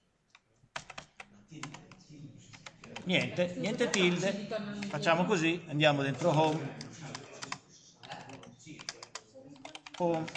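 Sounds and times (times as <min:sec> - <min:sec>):
computer keyboard key presses: 0:00.8 - 0:01.9, 0:06.2 - 0:10.3
speech: 0:03.1 - 0:06.8, 0:10.0 - 0:10.3.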